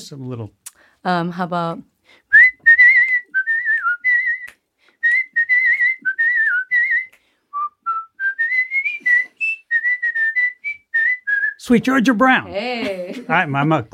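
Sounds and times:
speech: 0.1s - 2.2s, 11.7s - 13.9s
person whistling a lively jazz tune: 2.3s - 11.7s.

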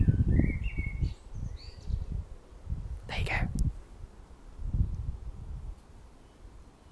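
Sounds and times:
blackbird singing in a garden: 0.0s - 2.2s
low outdoor rumble: 0.0s - 6.9s.

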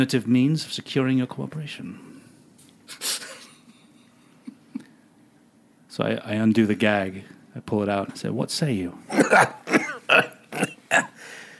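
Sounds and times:
speech: 0.0s - 2.1s, 6.0s - 10.7s
person fake coughing with a throaty rasp: 9.1s - 11.2s.

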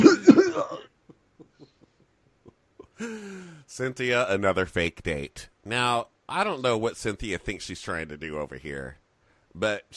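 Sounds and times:
harsh throaty cough: 0.0s - 1.0s
speech: 3.0s - 9.0s, 9.6s - 9.9s.

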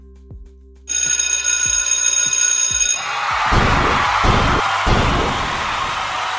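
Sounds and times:
alarm bell jingle ringing: 0.9s - 6.0s
heavy booming thumps: 3.5s - 6.1s
noisy rumbling: 3.5s - 6.2s.

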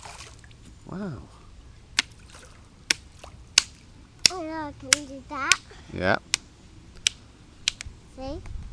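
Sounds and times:
splashes in river water made by a child with a stick: 0.0s - 0.6s, 2.0s - 3.8s
river water sloshing and trickling: 0.0s - 0.8s, 2.0s - 4.2s
speech: 0.9s - 1.4s, 4.5s - 6.3s, 8.2s - 8.6s.

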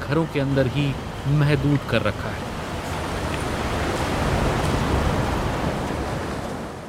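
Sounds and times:
high sea waves roaring: 0.0s - 6.8s
speech: 0.1s - 2.6s
strong wind blowing across the microphone: 2.6s - 6.8s.

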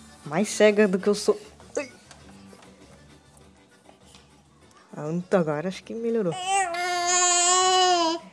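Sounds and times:
speech: 0.2s - 1.9s, 5.0s - 6.6s
baby girl babbling a high-pitched vowel: 6.3s - 8.3s.

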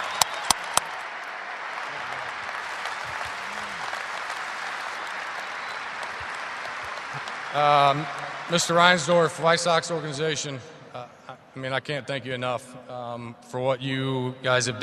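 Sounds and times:
sharp individual claps: 0.0s - 8.9s
large audience applause: 0.0s - 10.1s
speech: 7.6s - 14.8s.

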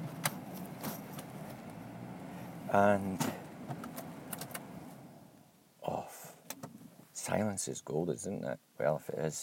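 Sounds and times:
car engine rumbling while parking: 0.0s - 5.6s
speech: 2.7s - 3.4s, 7.3s - 9.4s.

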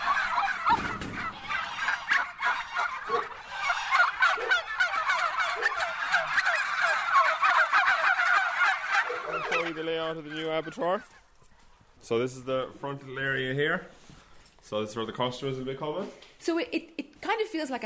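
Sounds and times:
flock of bronze turkeys gobbling: 0.0s - 11.4s
speech: 9.8s - 11.2s, 12.0s - 14.1s, 14.7s - 17.8s.

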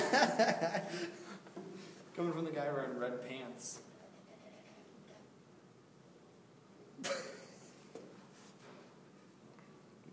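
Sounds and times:
laughter: 0.0s - 1.4s
speech: 0.1s - 1.4s, 2.2s - 3.9s, 7.0s - 7.4s
single short breathy cough: 7.0s - 7.6s.

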